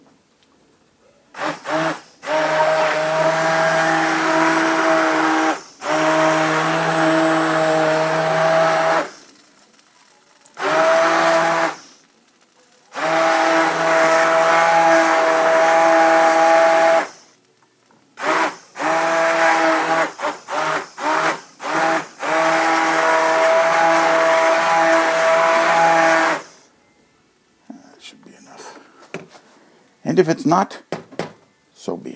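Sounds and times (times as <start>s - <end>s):
stick blender whirring in a pot: 1.4s - 12.1s, 12.9s - 17.3s, 18.2s - 26.7s
speech: 30.3s - 30.8s.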